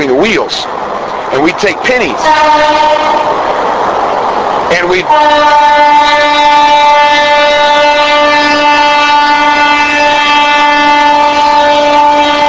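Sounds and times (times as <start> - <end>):
train rumbling past on railroad tracks: 0.0 - 12.4
speech: 0.2 - 3.6, 4.7 - 8.0
long steady train horn blast: 2.2 - 3.5, 5.0 - 12.4.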